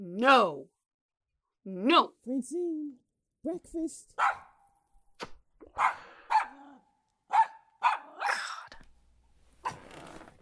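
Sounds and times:
speech: 0.2 - 0.6, 1.6 - 4.4, 5.8 - 6.1
puppy dog barking: 4.2 - 4.6, 5.8 - 8.4.

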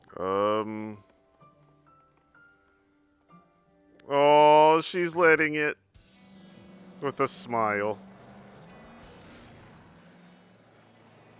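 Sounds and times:
speech: 0.2 - 1.1, 4.8 - 5.8, 7.0 - 8.1
car engine droning while driving in the desert: 6.0 - 11.3.

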